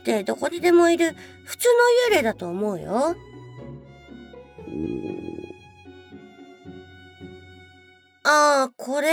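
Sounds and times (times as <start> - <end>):
speech: 0.0 - 3.3, 8.2 - 9.1
stomach rumbling with gurgling churning bursts: 4.6 - 5.6.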